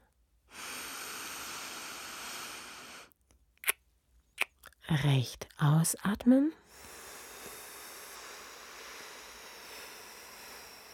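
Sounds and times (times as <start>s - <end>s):
long steady inhale through one nostril: 0.5s - 3.1s, 6.7s - 10.9s
speech: 4.9s - 6.9s.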